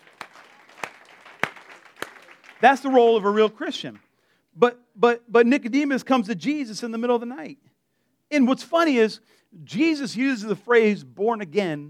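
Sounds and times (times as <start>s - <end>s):
congregation clapping in unison in a roomy space: 0.0s - 4.2s
speech: 2.6s - 11.8s.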